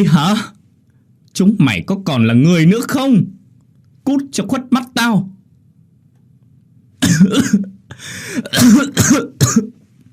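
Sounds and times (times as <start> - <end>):
speech: 0.0 - 0.6, 1.4 - 3.4, 4.0 - 5.3, 7.2 - 9.8
angry man coughing harshly: 7.0 - 9.8
man's wheezy breath: 7.9 - 8.5.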